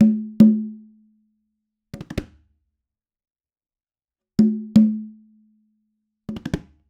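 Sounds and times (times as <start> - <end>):
Latin conga loop: 0.0 - 0.7.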